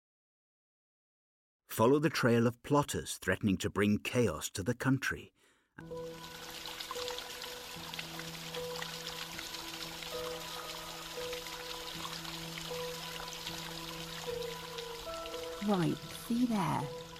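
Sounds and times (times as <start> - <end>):
speech: 1.8 - 6.5, 15.7 - 17.0
water dripping and trickling over a rocky edge: 5.8 - 17.1.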